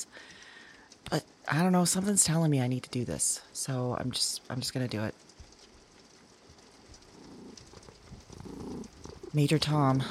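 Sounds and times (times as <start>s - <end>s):
speech: 1.1s - 5.2s, 9.4s - 10.0s
cat purring: 6.7s - 10.0s.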